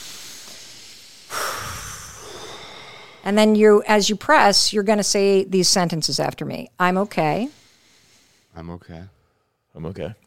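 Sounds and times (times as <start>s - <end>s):
deep breath in and out during a calming self-comfort exercise: 0.0s - 3.4s, 7.3s - 9.7s
speech: 3.2s - 7.6s, 8.6s - 9.2s, 9.8s - 10.2s.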